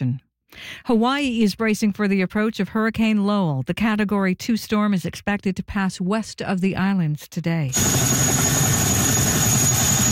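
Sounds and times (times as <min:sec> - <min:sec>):
speech: 0:00.8 - 0:08.6
National Guard helicopter delivering troops and supplies: 0:07.7 - 0:10.1.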